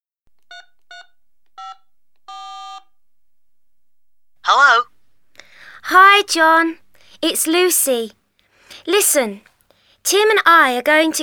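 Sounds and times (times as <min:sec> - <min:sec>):
telephone keypad tones as a number is dialed: 0:00.5 - 0:02.9
speech: 0:05.9 - 0:08.2, 0:08.8 - 0:11.2.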